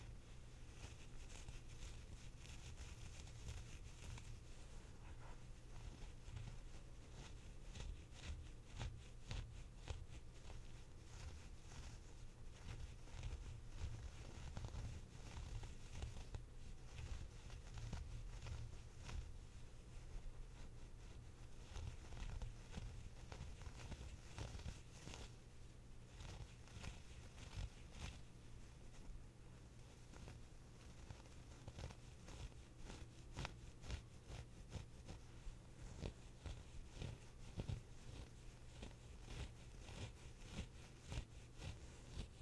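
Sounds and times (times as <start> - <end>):
scratching a sweater's knit fabric: 0.0 - 42.4.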